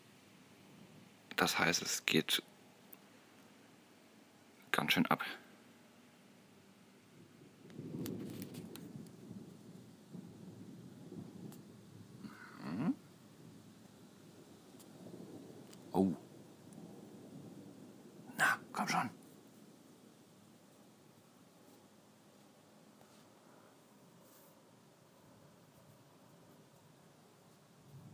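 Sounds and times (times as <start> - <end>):
speech: 1.4 - 2.5, 4.8 - 5.4
steady low rolling thunder: 7.1 - 21.3, 27.7 - 28.1
sharper thunder cracks: 7.2 - 20.3.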